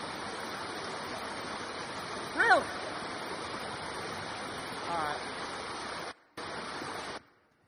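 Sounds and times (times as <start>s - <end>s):
shallow fast-running brook water rushing: 0.0s - 7.5s.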